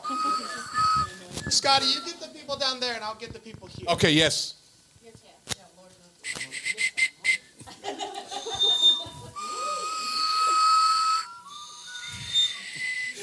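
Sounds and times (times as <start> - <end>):
crowd blowing hummer whistles: 0.0 - 2.2, 6.2 - 7.6, 8.3 - 13.2
chatter: 0.0 - 2.8, 5.0 - 13.2
speech: 1.5 - 4.6
scattered laughter: 7.6 - 10.7.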